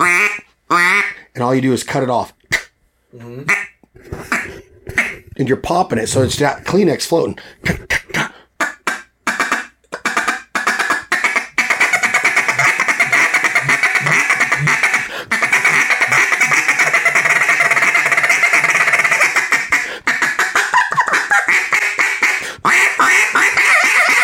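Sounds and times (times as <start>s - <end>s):
quack blown on a duck call: 0.0s - 1.3s, 3.5s - 5.2s, 7.9s - 24.2s
speech: 0.3s - 2.4s, 3.1s - 4.4s, 5.4s - 8.2s.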